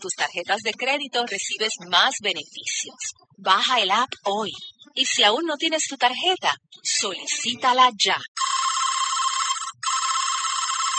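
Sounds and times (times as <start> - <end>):
speech: 0.0 - 8.5
unanswered telephone ringing with electronic trill: 8.4 - 10.9.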